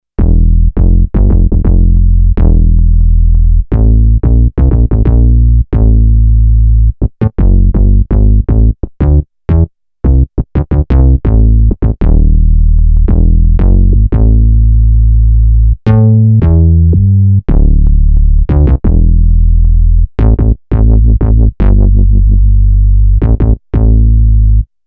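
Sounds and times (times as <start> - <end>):
pulse bass synth: 0.1 - 24.7.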